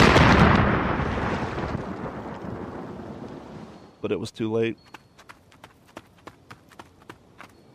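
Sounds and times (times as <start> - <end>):
heavy bomb blast: 0.0 - 3.3
speech: 4.0 - 5.0.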